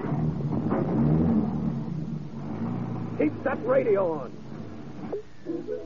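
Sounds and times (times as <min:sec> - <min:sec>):
car engine rumbling as the vehicle pulls away during a getaway: 0:00.0 - 0:05.7
speech: 0:03.2 - 0:04.4.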